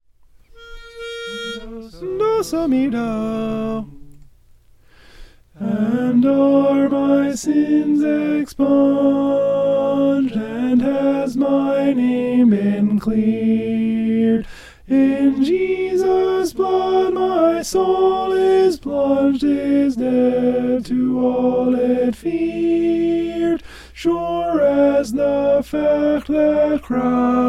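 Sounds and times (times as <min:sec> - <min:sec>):
alto voice singing: 0:00.5 - 0:04.3, 0:05.6 - 0:27.4.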